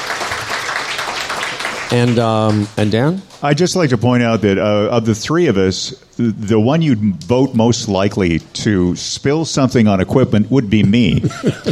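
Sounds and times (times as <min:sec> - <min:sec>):
audience applauding: 0:00.0 - 0:02.9
speech: 0:01.9 - 0:11.7
laughter: 0:10.8 - 0:11.7.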